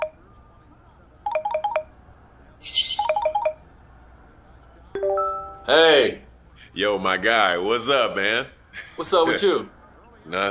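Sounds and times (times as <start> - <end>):
melodic call ringtone as someone is dialled: 1.2 - 1.9, 2.7 - 3.6, 5.0 - 5.7
speech: 5.7 - 6.2, 6.8 - 10.5.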